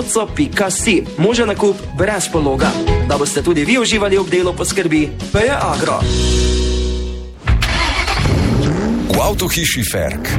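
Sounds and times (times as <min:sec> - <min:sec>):
speech: 0:00.0 - 0:06.7, 0:09.2 - 0:10.3
15 hp engine with electric start starting: 0:07.6 - 0:08.9.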